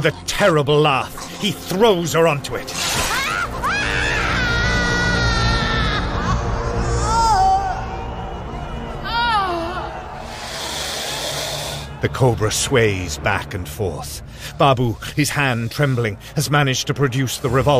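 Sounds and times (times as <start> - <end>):
speech: 0.0 - 3.1, 12.0 - 17.7
woman screaming in shrill wavering bursts: 3.0 - 7.9, 9.0 - 10.1.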